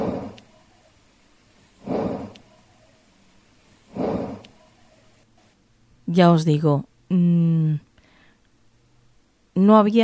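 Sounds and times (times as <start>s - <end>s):
slow breathing or snorting in an empty bedroom: 0.0s - 0.4s, 1.8s - 2.4s, 3.9s - 4.6s
steady hiss: 0.0s - 10.0s
speech: 6.1s - 7.9s, 9.6s - 10.0s.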